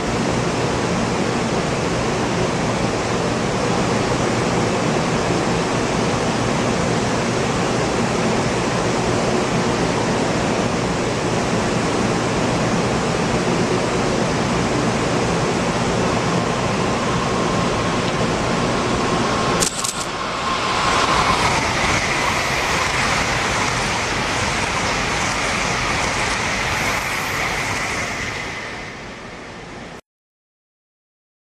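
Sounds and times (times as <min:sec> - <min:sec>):
Shinkansen Series 0 high-speed train: 0:00.0 - 0:30.0.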